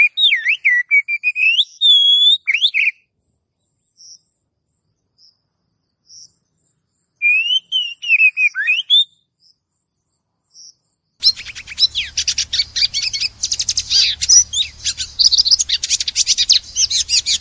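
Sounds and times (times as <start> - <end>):
Oriental magpie-robin song: 0.0 - 4.4, 6.0 - 9.6, 10.5 - 17.3
low hum: 11.2 - 17.3.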